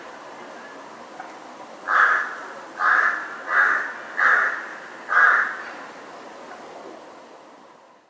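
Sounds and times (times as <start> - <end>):
light background hiss: 0.0 - 8.0
crow cawing: 1.9 - 5.7.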